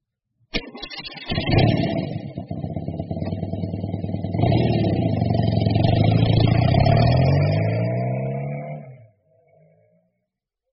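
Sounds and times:
motorbike engine starting, chugging and revving: 0:01.2 - 0:09.0.

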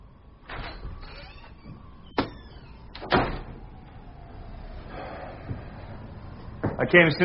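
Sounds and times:
door opening with short mechanical clatter: 0:00.4 - 0:04.0
speech: 0:06.8 - 0:07.2.

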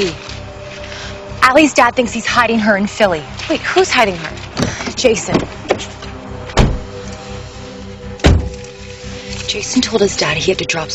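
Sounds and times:
speech: 0:00.0 - 0:00.3, 0:01.5 - 0:05.9, 0:09.5 - 0:10.9
heavy car doors slamming shut: 0:04.6 - 0:05.9, 0:06.5 - 0:07.0, 0:08.2 - 0:08.7.

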